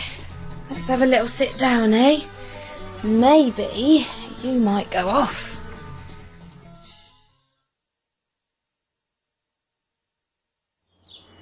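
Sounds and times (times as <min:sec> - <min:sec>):
speech: 0:00.7 - 0:02.4, 0:03.0 - 0:05.5
birds chirping and singing outdoors: 0:11.0 - 0:11.4.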